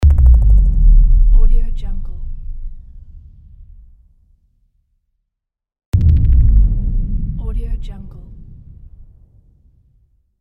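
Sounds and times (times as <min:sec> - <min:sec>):
alien boom: 0:00.0 - 0:04.1, 0:06.0 - 0:09.4.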